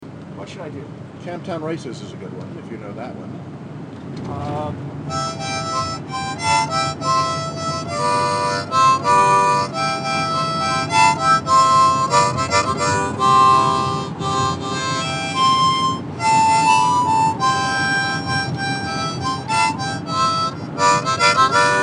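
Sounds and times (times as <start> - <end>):
harmonica: 5.1 - 21.8.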